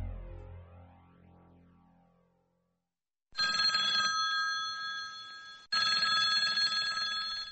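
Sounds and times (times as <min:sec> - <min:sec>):
old-style telephone bell ringing in Taiwan: 0:03.4 - 0:07.5.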